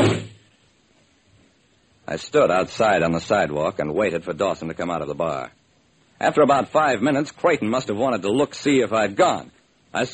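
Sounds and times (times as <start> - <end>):
door shutting with a solid thud: 0.0 - 0.4
speech: 2.1 - 5.6, 6.2 - 10.1.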